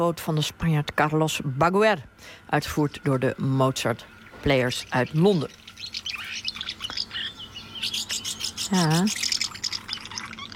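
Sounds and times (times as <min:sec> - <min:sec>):
speech: 0:00.0 - 0:06.0, 0:08.7 - 0:09.3
birdsong in June from blackbirds, robins and passing swifts: 0:02.7 - 0:10.5.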